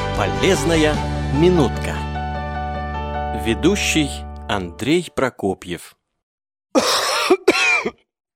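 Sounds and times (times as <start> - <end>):
speech: 0.2 - 2.1, 3.5 - 6.0, 6.7 - 8.0
harsh raspy coughs: 6.7 - 8.1.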